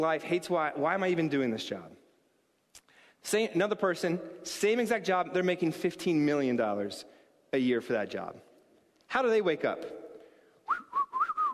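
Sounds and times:
speech: 0.0s - 2.0s, 3.2s - 8.5s, 9.1s - 10.0s
person whistling a tune: 10.6s - 11.5s.

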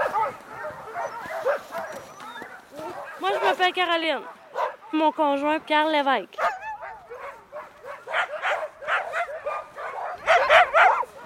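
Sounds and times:
dogs whining: 0.0s - 2.7s
many dogs barking and yipping: 0.0s - 5.3s, 6.3s - 11.2s
speech: 3.5s - 6.5s.

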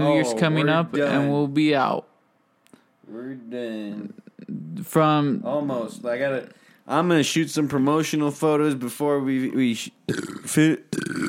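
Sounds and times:
speech: 0.0s - 2.1s, 3.1s - 11.2s
vocal noises: 10.0s - 11.2s
man burping: 10.1s - 11.2s.

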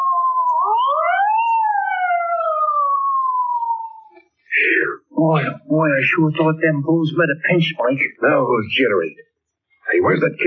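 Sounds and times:
police car siren wailing as it passes: 0.0s - 4.7s
speech: 5.2s - 9.3s, 10.0s - 10.4s.

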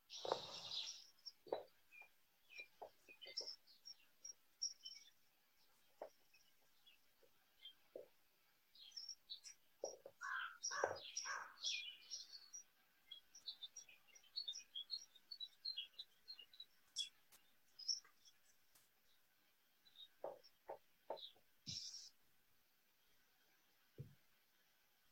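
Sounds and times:
chorus of many birds chirping and singing: 0.0s - 5.2s, 8.8s - 18.5s, 19.8s - 22.1s.

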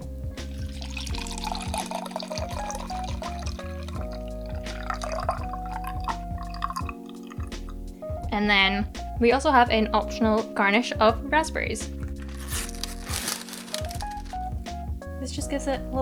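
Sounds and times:
soft music: 0.0s - 16.0s
French martini cocktail strained into a glass: 0.4s - 7.8s
speech: 8.4s - 12.0s, 15.4s - 16.0s.

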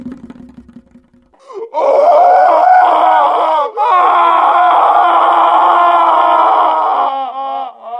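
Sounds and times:
person gasping: 1.4s - 1.8s
person screaming: 1.4s - 7.9s.

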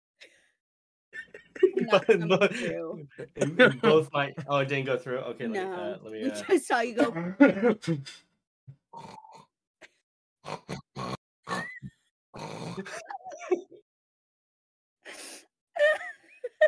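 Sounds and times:
laughter: 1.2s - 8.2s
speech: 1.4s - 8.3s, 9.0s - 9.2s, 12.4s - 13.6s
voice imitating a person's snoring with pig-like snorts: 8.9s - 9.5s, 10.4s - 13.0s.

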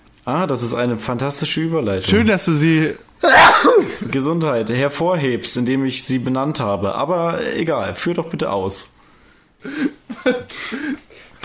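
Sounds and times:
speech: 0.2s - 8.9s, 9.6s - 11.0s
person sneezing into the microphone: 3.2s - 4.0s.

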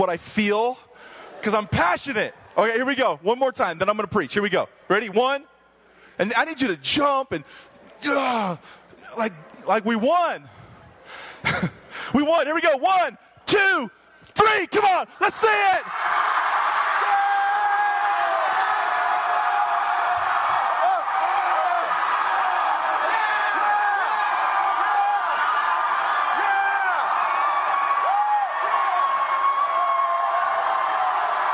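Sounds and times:
speech: 0.0s - 5.5s, 6.2s - 16.4s
large audience shouting and cheering with whoops: 14.5s - 31.5s.

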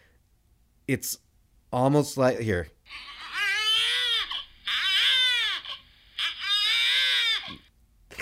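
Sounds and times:
speech: 0.9s - 3.1s
baby crying: 2.9s - 7.7s.

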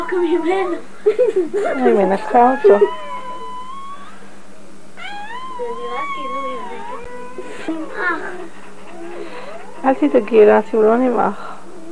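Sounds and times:
faint noise: 0.0s - 11.9s
speech: 0.1s - 3.1s, 9.8s - 11.5s
laughter: 0.6s - 2.9s
newborn kittens mewing: 1.7s - 4.2s, 5.0s - 10.4s.

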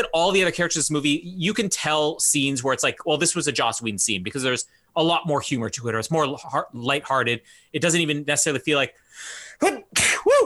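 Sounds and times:
speech: 0.0s - 10.4s
breathy intake before sneezing: 9.0s - 9.6s
person sneezing: 9.6s - 10.4s.

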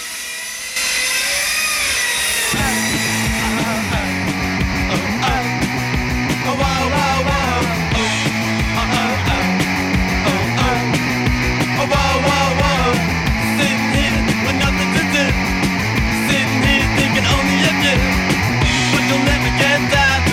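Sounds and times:
circular saw cutting: 0.0s - 5.2s
loud fast rock band with guitars and drums: 0.0s - 20.3s.

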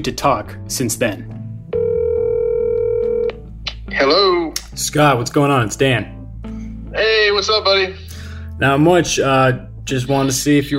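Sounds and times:
speech: 0.0s - 1.4s, 3.9s - 6.2s, 7.0s - 10.7s
telephone call ringing tone on the line: 1.7s - 3.4s.

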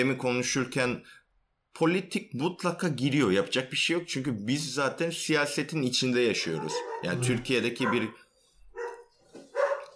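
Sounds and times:
speech: 0.0s - 1.2s, 1.8s - 8.2s
dog barking: 6.4s - 9.9s.

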